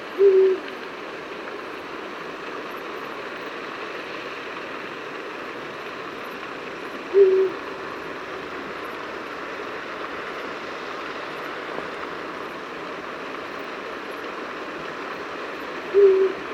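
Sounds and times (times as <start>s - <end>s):
eagle owl calling: 0.2s - 0.7s, 7.1s - 7.7s, 15.9s - 16.4s.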